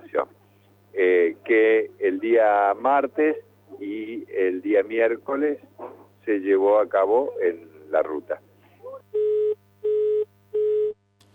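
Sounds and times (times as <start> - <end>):
speech: 0.2 - 8.4
dropped mobile phone call line tone beeps: 9.1 - 11.0.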